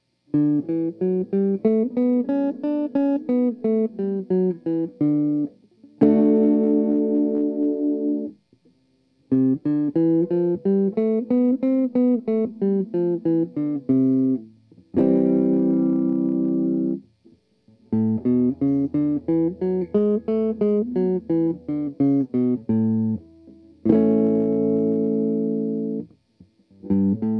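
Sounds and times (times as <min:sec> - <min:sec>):
clean neck pickup electric guitar: 0:00.0 - 0:27.3.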